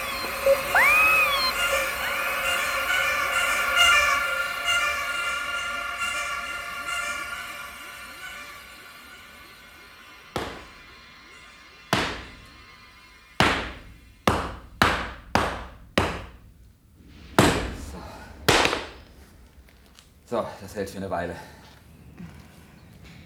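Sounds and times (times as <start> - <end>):
faint steady hiss: 0.0 - 23.2
gunshots: 17.3 - 19.2
speech: 20.4 - 21.6.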